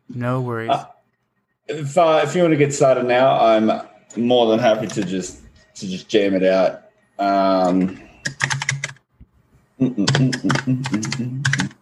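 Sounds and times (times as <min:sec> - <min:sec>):
speech: 0:00.1 - 0:01.0, 0:01.7 - 0:08.6, 0:09.8 - 0:11.5
loud rapid computer keyboard typing: 0:08.2 - 0:09.0, 0:10.0 - 0:11.8.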